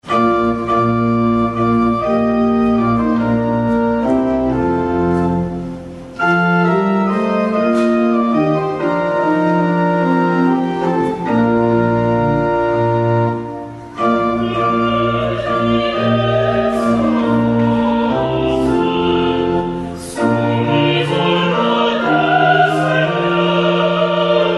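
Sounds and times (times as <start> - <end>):
pipe organ playing: 0.0 - 24.5.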